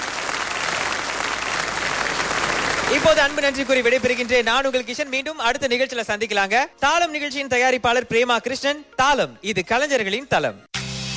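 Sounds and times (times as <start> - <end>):
studio audience applause at the close of an arts and music programme: 0.0 - 5.1
speech: 3.0 - 10.7.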